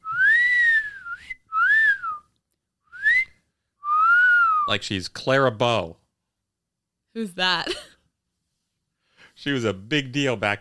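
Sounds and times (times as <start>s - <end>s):
wolf whistles from boxers in a gym: 0.0s - 2.3s, 2.9s - 4.7s
speech: 4.7s - 6.0s, 7.2s - 7.8s, 9.4s - 10.5s.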